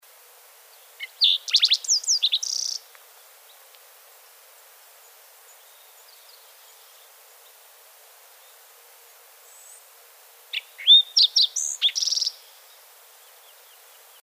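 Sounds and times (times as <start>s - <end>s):
green-tailed towhee calling: 1.0s - 2.8s, 10.5s - 12.4s.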